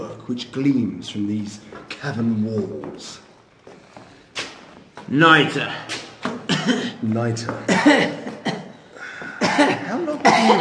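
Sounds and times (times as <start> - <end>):
speech: 0.3 - 3.3, 5.1 - 6.0, 6.6 - 8.2, 9.6 - 10.5
person in a coughing fit: 6.4 - 7.0, 7.7 - 10.5.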